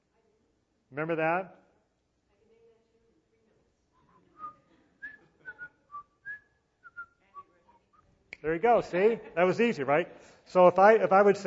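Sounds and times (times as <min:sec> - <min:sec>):
speech: 0:00.9 - 0:01.6, 0:08.4 - 0:11.4
person whistling a short tune: 0:04.4 - 0:07.2.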